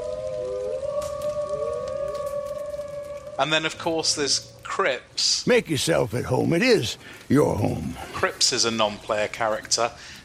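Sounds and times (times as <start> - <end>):
wolves howling: 0.0 - 4.7
speech: 3.4 - 10.2.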